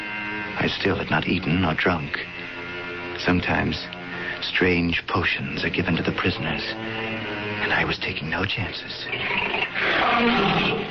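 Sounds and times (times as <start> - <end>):
speech: 0.6 - 2.3, 3.2 - 10.8
hungry lion roaring: 9.0 - 10.8.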